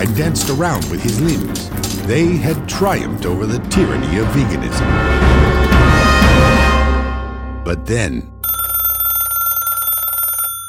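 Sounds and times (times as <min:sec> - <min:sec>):
speech: 0:00.0 - 0:06.6, 0:07.7 - 0:08.3
telephone ringing with bright electronic tone: 0:08.4 - 0:10.6.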